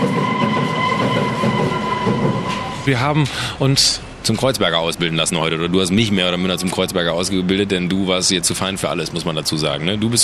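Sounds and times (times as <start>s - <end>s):
faint metallic whine of subway train: 0.0s - 4.4s
subway train rumbling by overhead: 0.0s - 10.2s
speech: 2.9s - 10.2s.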